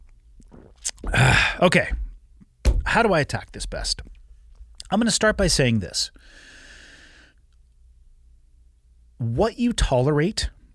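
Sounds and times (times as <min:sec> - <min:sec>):
wet mouth sounds: 0:00.4 - 0:01.4
person sipping water: 0:00.4 - 0:01.5
speech: 0:00.7 - 0:02.0, 0:02.9 - 0:04.1, 0:04.9 - 0:06.6, 0:09.2 - 0:10.6.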